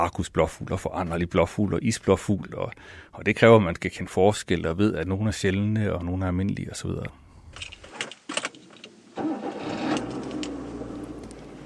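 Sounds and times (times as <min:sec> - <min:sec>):
speech: 0:00.0 - 0:07.8
rustling: 0:07.4 - 0:11.6
steady engine-like hum with a faint whine: 0:08.8 - 0:11.6.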